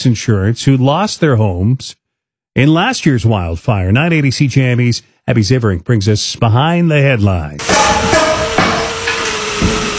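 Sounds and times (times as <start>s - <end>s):
speech: 0.0s - 2.0s, 2.6s - 8.3s
hammers pounding at a construction site: 7.6s - 9.9s.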